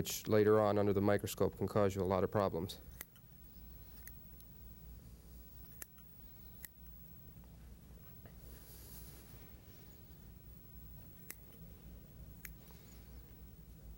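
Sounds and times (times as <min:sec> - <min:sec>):
speech: 0:00.0 - 0:03.0
low hum: 0:00.0 - 0:13.9
scissors snipping through rabbit fur during a dissection: 0:02.9 - 0:03.3, 0:05.6 - 0:06.9, 0:11.0 - 0:11.7, 0:12.3 - 0:12.8.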